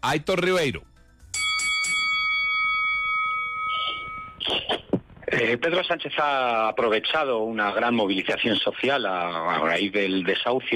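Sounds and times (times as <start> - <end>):
speech: 0.0 - 0.9, 5.4 - 10.7
debate bell ringing: 1.3 - 4.4.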